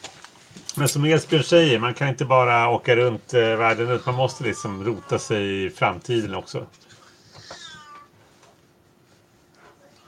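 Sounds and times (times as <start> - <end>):
faint hum: 0.0 - 10.0
speech: 0.8 - 6.9
cat meowing: 3.8 - 5.4, 7.2 - 8.2.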